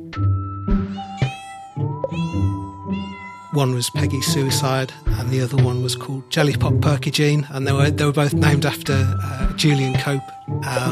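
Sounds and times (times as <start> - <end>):
kitten meowing: 0.8 - 4.2
speech: 3.6 - 10.9.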